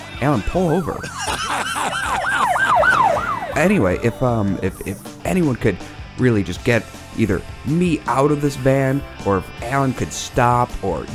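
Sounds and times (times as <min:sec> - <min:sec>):
road rumble: 0:00.0 - 0:08.8
speech: 0:00.2 - 0:01.6, 0:03.6 - 0:11.1
police car siren wailing: 0:00.3 - 0:05.1
laughter: 0:00.6 - 0:05.0.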